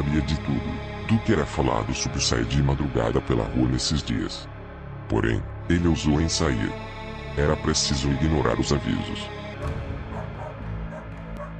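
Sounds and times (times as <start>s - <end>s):
speech: 0.1s - 9.9s
agitated neighbourhood dogs barking and yipping: 9.9s - 11.5s.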